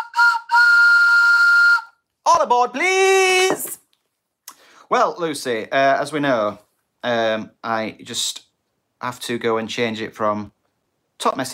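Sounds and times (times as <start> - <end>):
whistle blowing: 0.0 - 2.0
speech: 2.4 - 3.8, 4.9 - 10.6, 11.2 - 11.5.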